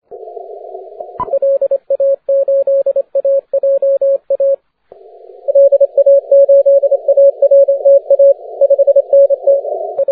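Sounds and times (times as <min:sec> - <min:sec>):
40m band continuous wave radio morse code tones: 0:01.2 - 0:04.6, 0:05.5 - 0:10.1.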